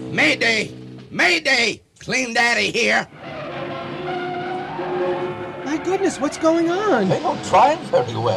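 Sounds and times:
rough scooter engine roar: 0.0s - 1.4s, 2.7s - 8.3s
speech: 0.1s - 3.2s, 5.7s - 8.3s
scooter tires screeching in a skid: 2.8s - 8.3s.

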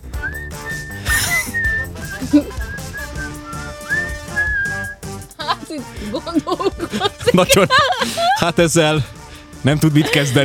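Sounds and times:
person whistling a short melody: 0.0s - 5.1s
busy music: 0.0s - 10.4s
laughter: 1.0s - 3.2s, 5.4s - 9.1s, 9.8s - 10.4s
speech: 2.3s - 2.6s, 5.8s - 10.4s.

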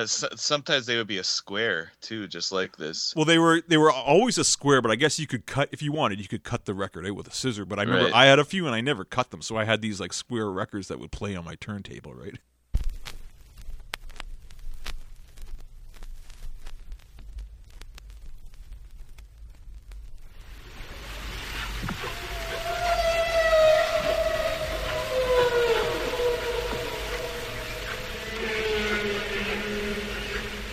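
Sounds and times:
speech: 0.0s - 12.5s
low rumble: 14.3s - 30.7s
hissing watery background: 20.2s - 30.7s
humpback whale song recorded underwater through a hydrophone near Bermuda: 22.0s - 30.7s.

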